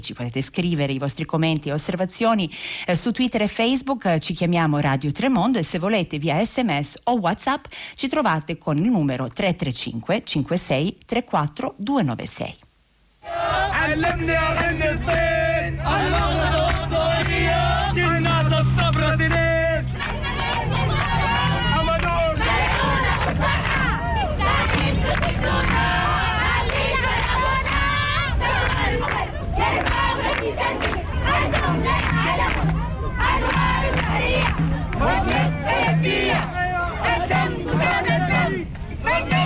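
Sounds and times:
speech: 0.0s - 12.6s, 13.3s - 16.6s
large crowd shouting and chanting for freedom at a protest in Khartoum: 13.2s - 39.4s.

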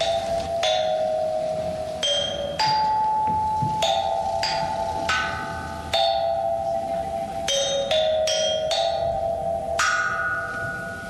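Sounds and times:
resonant tones from stroking a sound stone: 0.0s - 11.0s.

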